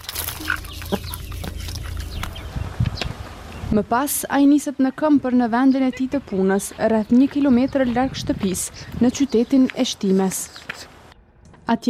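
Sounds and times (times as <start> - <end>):
busy rustling: 0.0 - 3.4
steady noisy outdoor background: 0.0 - 11.8
chickens clucking while being fed in a home garden: 0.2 - 3.3
speech: 3.7 - 10.9, 11.7 - 11.8.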